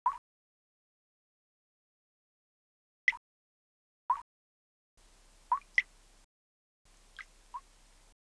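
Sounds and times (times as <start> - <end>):
dripping water ambience: 5.5 - 5.9.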